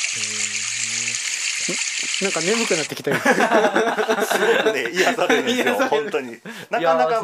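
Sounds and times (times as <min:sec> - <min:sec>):
laughter: 0:00.2 - 0:01.8, 0:02.6 - 0:07.2
low voice: 0:00.2 - 0:01.8, 0:04.2 - 0:07.2
small narrow headwater mountain stream rushing over rocks: 0:01.2 - 0:03.0
speech: 0:02.2 - 0:07.2.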